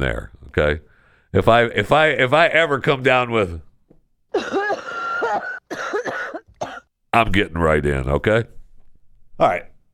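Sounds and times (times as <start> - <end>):
speech: 0.0 - 3.7, 7.1 - 8.6, 9.4 - 9.7
person coughing harshly: 4.3 - 6.9.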